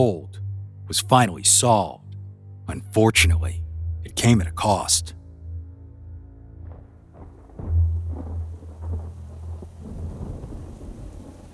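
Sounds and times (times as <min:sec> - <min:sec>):
speech: 0:00.0 - 0:02.0, 0:02.7 - 0:03.6, 0:04.2 - 0:05.2
deep rolling thunder in a heavy storm: 0:06.6 - 0:11.5
steady rain: 0:07.2 - 0:11.5.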